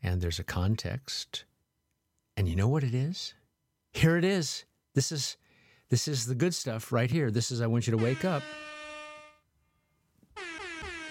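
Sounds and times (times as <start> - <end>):
speech: 0.2 - 1.5, 2.4 - 8.7
air horn sound effect blasts triggered by a button: 8.0 - 9.5, 10.4 - 11.0.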